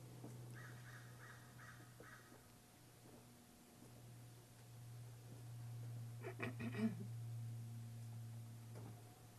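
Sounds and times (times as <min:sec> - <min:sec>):
low steady hum: 0:00.0 - 0:09.3
birds cawing outdoors: 0:00.5 - 0:02.4.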